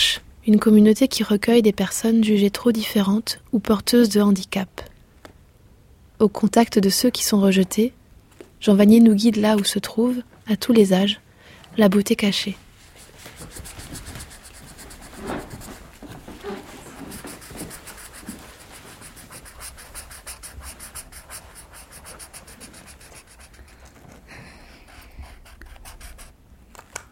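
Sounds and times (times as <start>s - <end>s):
speech: 0.5s - 4.9s, 6.2s - 8.0s, 8.6s - 11.2s, 11.8s - 12.6s
drawing tool rubbing on paper drawing a flower and sun: 12.9s - 26.4s.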